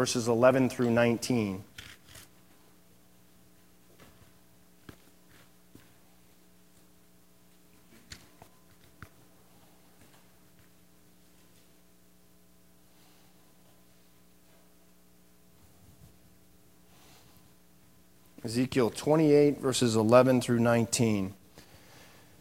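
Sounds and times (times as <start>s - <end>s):
speech: 0.0s - 1.8s, 18.5s - 21.4s
steady low electrical hum: 0.0s - 22.3s
book pages turning: 1.7s - 2.3s.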